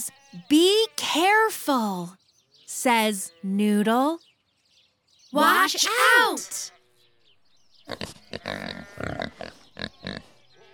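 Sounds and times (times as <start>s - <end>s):
speech: 0.0s - 4.3s, 5.3s - 6.8s, 7.9s - 10.3s
pigs oinking and grunting: 7.9s - 10.7s.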